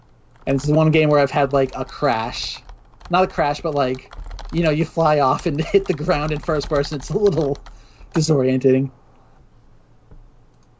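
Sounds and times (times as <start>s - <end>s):
typing on a computer keyboard: 0.0s - 8.3s
speech: 0.4s - 9.0s.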